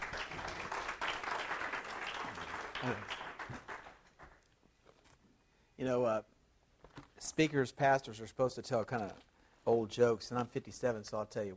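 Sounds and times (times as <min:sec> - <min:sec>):
crowd applauding: 0:00.0 - 0:04.4
speech: 0:02.8 - 0:03.6, 0:05.8 - 0:06.3, 0:07.2 - 0:11.5.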